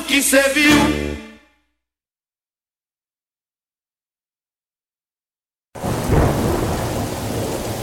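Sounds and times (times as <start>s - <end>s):
speech: 0.2s - 1.1s
heavy rain pouring in a thunderstorm: 5.8s - 7.8s
thunder rumbling in a thunderstorm: 5.8s - 7.8s.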